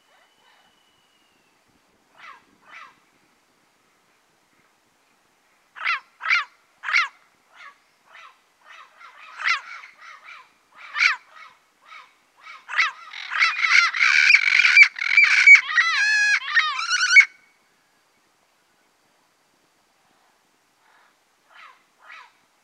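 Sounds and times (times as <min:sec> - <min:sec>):
turquoise-fronted amazon squawking and chattering in the Pantanal, Brazil: 0:05.8 - 0:17.4.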